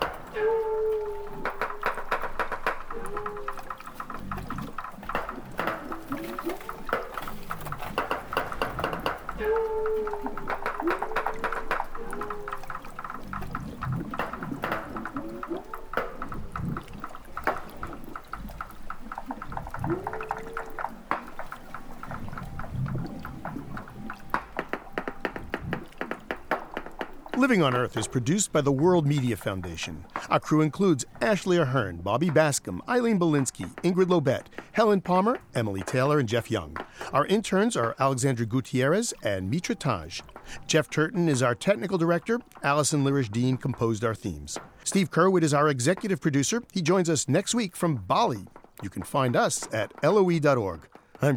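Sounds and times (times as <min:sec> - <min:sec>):
bell-like bending walrus calls underwater off the coast of Alaska: 0:00.0 - 0:31.4
walruses knocking and tapping underwater off the coast of Alaska: 0:00.0 - 0:51.3
speech: 0:27.5 - 0:51.3.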